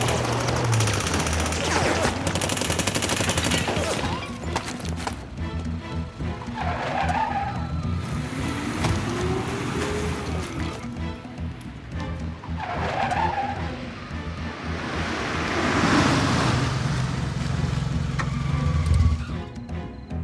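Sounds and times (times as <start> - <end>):
volley of rapid gunfire: 0.0 - 4.2
car engine rumbling: 0.0 - 20.2.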